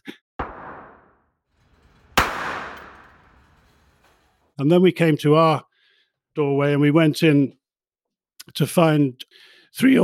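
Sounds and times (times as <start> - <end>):
pistol shots at an indoor shooting range: 2.2 - 3.2
speech: 4.6 - 5.7, 6.4 - 7.6, 8.5 - 10.0.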